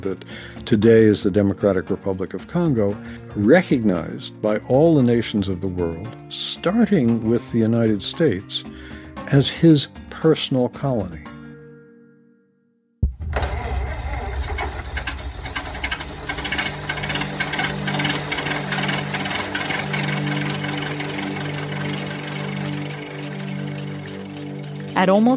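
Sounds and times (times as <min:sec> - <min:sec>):
speech: 0:00.0 - 0:11.3, 0:25.0 - 0:25.3
early automobile internal combustion engine running: 0:13.2 - 0:25.3.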